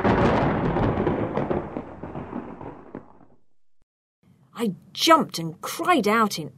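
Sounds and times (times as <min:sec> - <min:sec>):
heavy rain in a storm: 0:00.0 - 0:02.2
thunder rumbling in a storm: 0:00.0 - 0:03.8
speech: 0:04.6 - 0:06.5.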